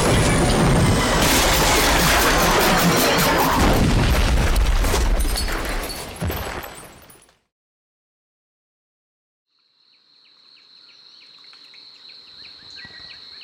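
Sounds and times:
loud broadband burst: 0:00.0 - 0:04.6
distant exploding bombs: 0:00.0 - 0:06.4.

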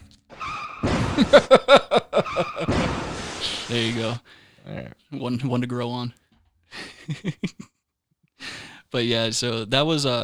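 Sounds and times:
loud crunching car crash impacts and clatter: 0:00.0 - 0:04.0
short tire screech of a car crash: 0:00.0 - 0:04.2
laughter: 0:00.8 - 0:04.2, 0:06.7 - 0:07.8
speech: 0:01.2 - 0:02.7, 0:03.7 - 0:07.7, 0:08.9 - 0:10.2.

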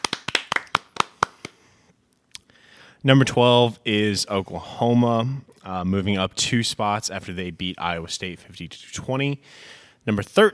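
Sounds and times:
single pair of hands clapping: 0:00.0 - 0:01.6
speech: 0:03.0 - 0:10.5.

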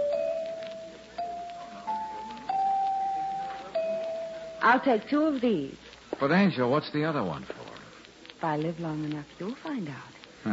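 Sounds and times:
chimes ringing: 0:00.0 - 0:04.8
speech: 0:04.6 - 0:07.6, 0:08.4 - 0:10.5.

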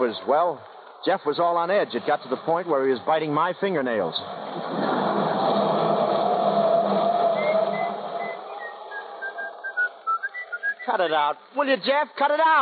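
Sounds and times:
speech: 0:00.0 - 0:05.0, 0:10.9 - 0:12.5
steady hum: 0:00.0 - 0:11.1
person whistling a wavering sliding tune: 0:07.4 - 0:11.0.

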